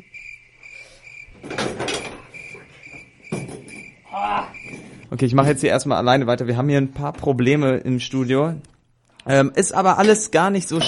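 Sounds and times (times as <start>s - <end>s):
cricket chirping: 0.0s - 5.1s
broadband knocks and rustling bursts: 1.3s - 4.0s
speech: 4.2s - 10.8s.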